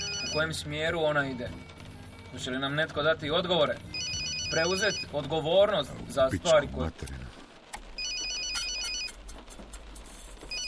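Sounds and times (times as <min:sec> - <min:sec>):
police inspector's mobile phone ringtone: 0:00.0 - 0:00.6, 0:03.9 - 0:05.1, 0:08.0 - 0:09.2
speech: 0:00.4 - 0:01.7, 0:02.3 - 0:07.3.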